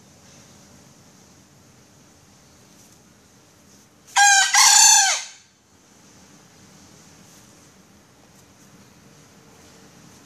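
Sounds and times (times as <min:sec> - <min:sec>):
female junglefowl crowing: 0:04.1 - 0:05.5.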